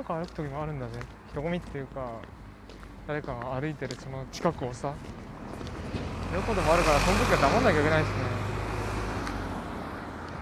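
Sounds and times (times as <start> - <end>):
speech: 0.0 - 5.3, 5.9 - 8.4
cars passing by on a road: 0.0 - 10.4.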